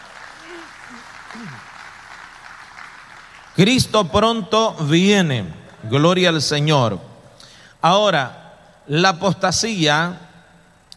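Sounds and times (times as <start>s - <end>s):
audience applauding: 0.0s - 3.8s
speech: 0.9s - 1.7s, 3.6s - 7.1s, 7.8s - 10.3s.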